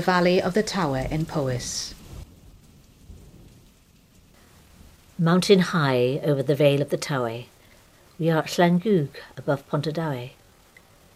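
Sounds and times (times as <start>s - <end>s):
speech: 0.0s - 2.0s, 5.2s - 7.5s, 8.2s - 10.4s
steady rain falling in a valley in Powys in early summer: 0.0s - 11.1s.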